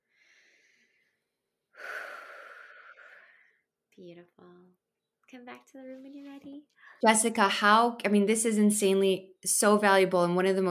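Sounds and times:
deep breath taken together during a guided meditation: 0.0s - 3.7s
speech: 4.0s - 10.6s.

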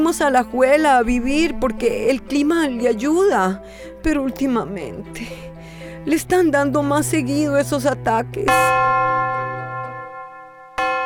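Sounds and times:
speech: 0.0s - 8.9s
deep church bell tolling midnight: 8.5s - 11.0s.

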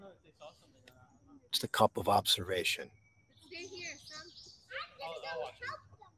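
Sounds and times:
bird chirping: 0.2s - 5.8s
speech: 1.5s - 3.0s
children's voices and playground chatter: 3.5s - 6.1s.

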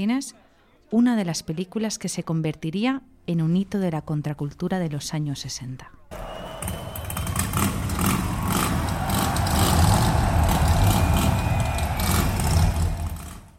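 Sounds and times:
speech: 0.0s - 6.0s
Harley motorcycle engine revving: 6.6s - 13.5s.

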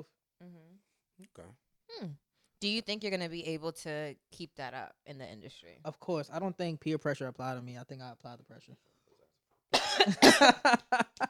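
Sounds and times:
speech: 1.3s - 8.9s, 10.0s - 11.2s
person coughing harshly with something caught in the throat: 9.8s - 10.6s.

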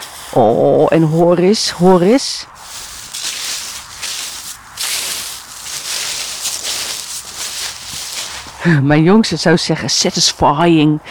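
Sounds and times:
boots tramping through tall frozen grass: 0.0s - 8.7s
speech: 0.4s - 2.6s, 8.6s - 11.0s.

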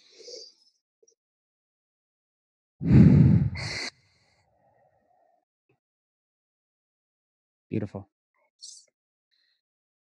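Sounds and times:
speech: 2.8s - 3.8s, 7.7s - 8.8s
deep breath during guided relaxation: 2.8s - 5.4s.

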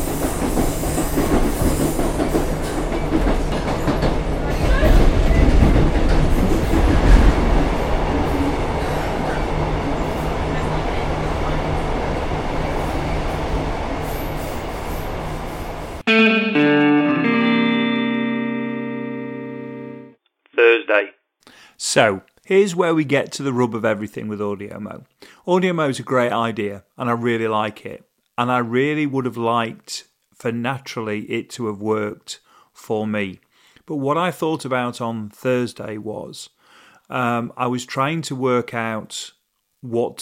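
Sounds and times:
passenger train carriage rumble and rattle: 0.0s - 16.0s
announcement tones: 16.1s - 21.1s
speech: 22.0s - 40.2s.

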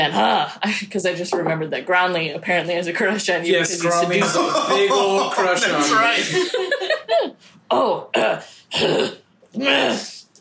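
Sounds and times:
speech: 0.0s - 10.3s
person clearing throat from something stuck in the throat: 4.2s - 5.4s, 7.7s - 9.3s
laughter: 4.2s - 7.4s.

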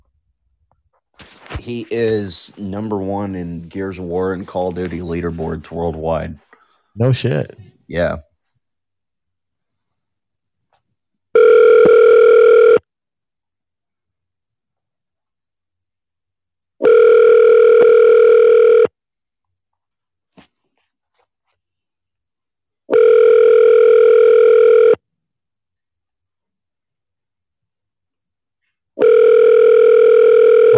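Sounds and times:
speech: 1.6s - 8.3s
telephone ringback tone from a call being placed: 11.4s - 12.8s, 16.8s - 18.9s, 22.9s - 25.0s, 29.0s - 30.7s.

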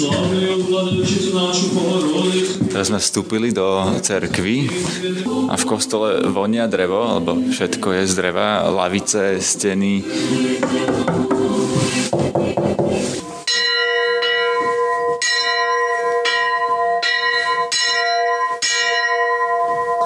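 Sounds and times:
speech: 0.0s - 13.1s
church bell clanging: 13.4s - 20.0s.

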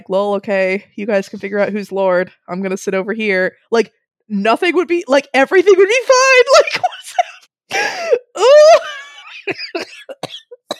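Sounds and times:
speech: 0.1s - 7.0s, 7.7s - 10.5s
harsh coughing: 9.6s - 10.7s.

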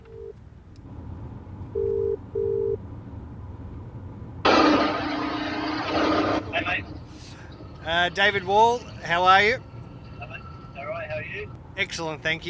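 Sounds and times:
low hum: 0.0s - 12.4s
phone ringback tone: 1.8s - 2.8s
speech: 7.9s - 9.7s, 11.8s - 12.4s.

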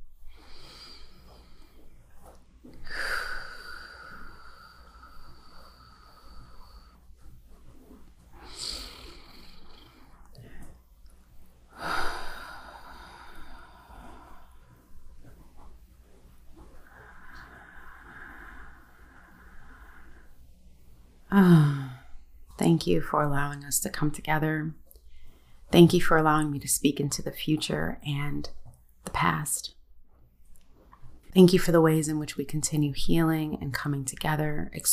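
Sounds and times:
slow deep breathing during a guided relaxation: 0.1s - 22.5s, 24.9s - 25.7s
speech: 21.3s - 21.7s, 22.7s - 24.8s, 25.8s - 28.6s, 29.2s - 29.8s, 31.4s - 34.9s.

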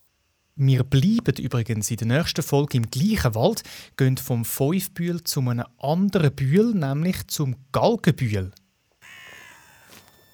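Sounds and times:
speech: 0.6s - 8.6s
raven rasping call: 9.0s - 10.3s.

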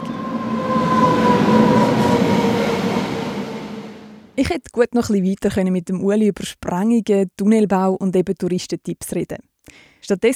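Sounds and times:
train rolling along rails: 0.0s - 4.4s
speech: 4.4s - 10.3s.

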